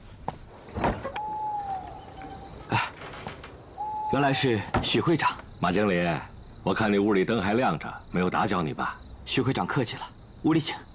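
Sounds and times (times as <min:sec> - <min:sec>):
door hinge creaking: 0:00.7 - 0:05.6
speech: 0:04.1 - 0:10.9.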